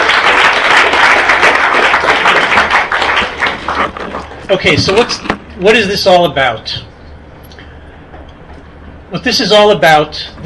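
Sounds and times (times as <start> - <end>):
audience applauding at a book talk: 0.0 - 4.4
speech: 4.5 - 6.9, 9.1 - 10.4.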